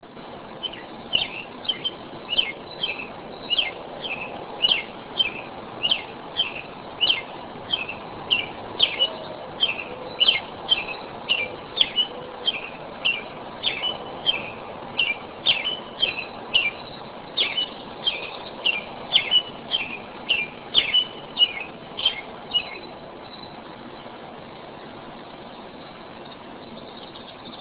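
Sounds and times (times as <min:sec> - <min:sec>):
robin singing: 0:00.5 - 0:27.5.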